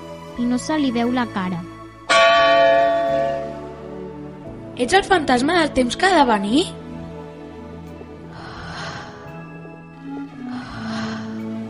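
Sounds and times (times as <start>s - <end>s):
speech: 0.4s - 1.7s, 4.8s - 6.8s
church bell chiming: 2.1s - 3.8s.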